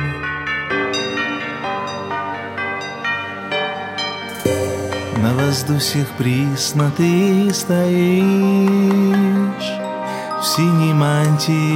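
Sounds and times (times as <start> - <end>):
church bells ringing: 0.0 - 7.9
speech: 5.2 - 9.8, 10.4 - 11.7.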